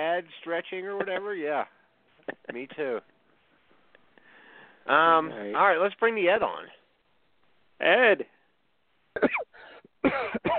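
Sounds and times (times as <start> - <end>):
speech: 0.0 - 3.1, 4.8 - 6.8, 7.8 - 8.4, 9.2 - 10.5
man clearing throat roughly: 9.2 - 10.5
man coughing: 9.2 - 10.5.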